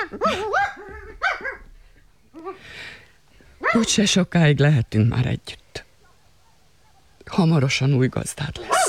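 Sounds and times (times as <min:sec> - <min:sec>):
dog barking and whimpering: 0:00.0 - 0:01.6, 0:03.6 - 0:03.9, 0:06.0 - 0:07.2, 0:08.6 - 0:08.8
speech: 0:00.1 - 0:00.6, 0:03.7 - 0:05.6, 0:07.3 - 0:08.7.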